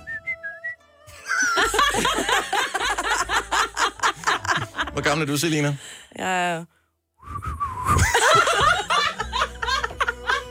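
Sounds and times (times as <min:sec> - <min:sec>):
person whistling: 0:00.0 - 0:00.8, 0:07.2 - 0:08.1
loud laughter: 0:01.2 - 0:05.0, 0:08.0 - 0:10.4
speech: 0:05.0 - 0:06.8.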